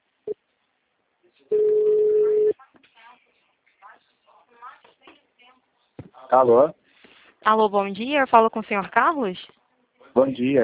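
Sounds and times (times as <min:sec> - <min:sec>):
telephone ringback tone while placing a call: 0:01.5 - 0:02.6
speech: 0:06.3 - 0:06.8, 0:07.4 - 0:09.6, 0:10.2 - 0:10.6.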